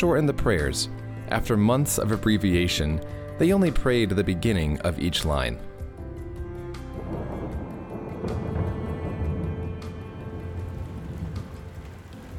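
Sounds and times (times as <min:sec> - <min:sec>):
speech: 0:00.0 - 0:05.7
sudden downpour of rain in Fatima: 0:06.3 - 0:12.3.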